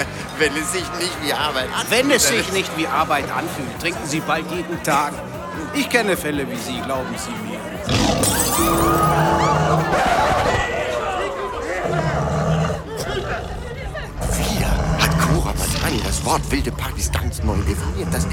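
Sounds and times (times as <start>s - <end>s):
laughter: 0.0s - 5.7s, 8.0s - 18.3s
excited voices at a crowded party: 0.0s - 18.3s
speech: 0.4s - 9.1s, 16.2s - 18.3s
real tiger roaring and growling: 7.9s - 10.6s, 11.6s - 18.3s.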